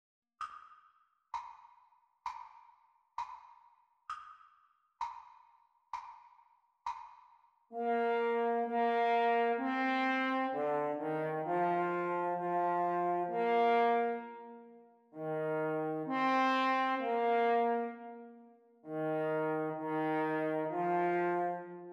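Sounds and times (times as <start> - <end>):
French horn duet playalong at practice speeds: 7.7 - 21.9.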